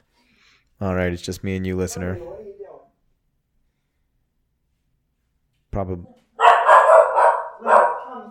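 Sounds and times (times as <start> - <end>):
speech: 0.8 - 2.4, 5.8 - 6.2
dog yelping: 6.4 - 8.3.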